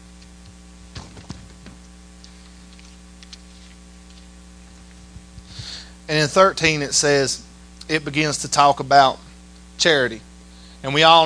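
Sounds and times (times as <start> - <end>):
steady low electrical hum: 0.0 - 11.2
paper being handled and rustled at the microphone: 1.0 - 5.6
speech: 6.1 - 9.2, 9.8 - 11.2.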